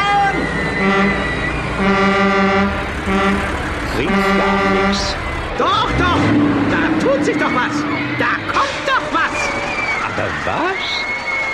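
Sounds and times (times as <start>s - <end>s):
vehicle engine rumble: 0.0s - 11.5s
vehicle horn honking: 0.7s - 5.2s
speech: 10.4s - 11.0s.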